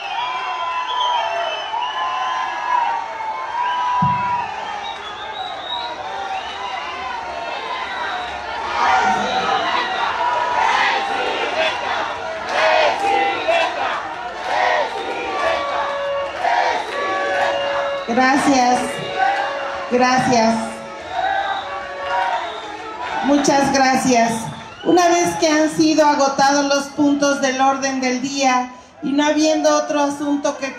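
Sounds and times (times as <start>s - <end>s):
large crowd shouting and cheering: 0.0s - 30.7s
speech: 18.2s - 18.9s, 19.9s - 20.7s, 23.2s - 30.7s.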